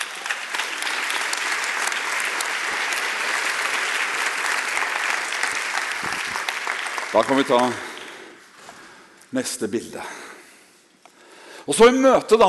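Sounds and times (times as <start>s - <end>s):
audience applause: 0.0s - 8.5s
speech: 7.2s - 7.9s, 9.3s - 10.2s, 11.7s - 12.4s.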